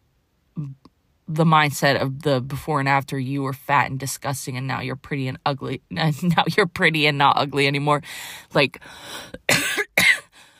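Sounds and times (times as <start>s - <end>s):
speech: 0.6s - 9.8s
person coughing loud and harsh: 9.4s - 10.4s.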